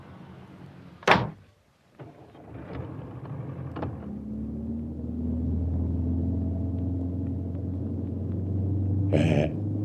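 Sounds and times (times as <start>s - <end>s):
car engine starting and rumbling as the vehicle pulls away: 2.4s - 9.8s.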